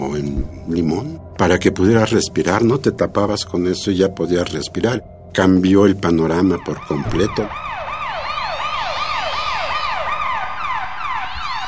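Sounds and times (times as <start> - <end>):
speech: 0.0 - 7.7
riot police sirens wailing: 6.3 - 11.6.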